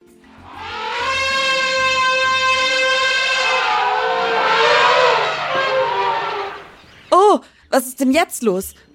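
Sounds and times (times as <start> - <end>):
elephant herd trumpeting and calling, greeting each other: 0.4 - 6.9
low rumbling of elephants: 0.4 - 7.0
speech: 7.8 - 8.9.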